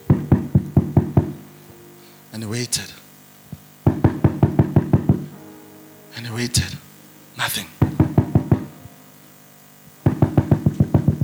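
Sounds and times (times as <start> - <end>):
firm knocking on a wooden door of a home: 0.1 - 1.4, 3.8 - 5.3, 7.8 - 8.7, 10.0 - 11.2
speech: 2.3 - 3.0, 6.4 - 6.8, 7.4 - 7.8.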